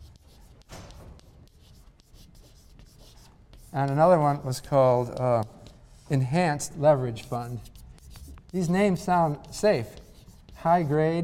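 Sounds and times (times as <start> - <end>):
someone writing something down: 0.0 - 4.0, 7.2 - 11.2
speech: 3.7 - 7.7, 8.5 - 10.0, 10.6 - 11.2.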